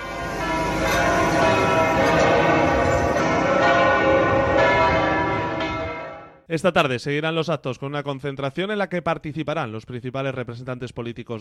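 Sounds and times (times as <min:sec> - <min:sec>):
cathedral bells pealing: 0:00.0 - 0:06.4
speech: 0:06.5 - 0:11.3.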